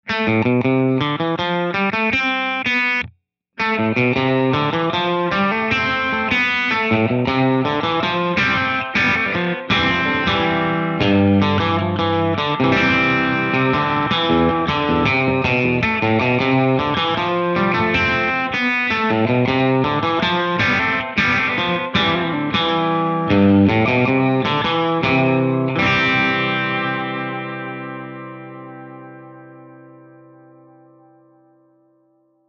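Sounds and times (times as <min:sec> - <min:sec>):
overdriven surf music with spring reverb: 0:00.1 - 0:31.6.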